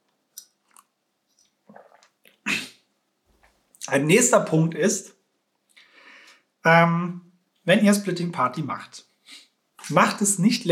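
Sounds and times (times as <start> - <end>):
person sipping and swallowing a drink: 0.3 - 2.8
speech: 3.9 - 5.2, 6.6 - 10.7.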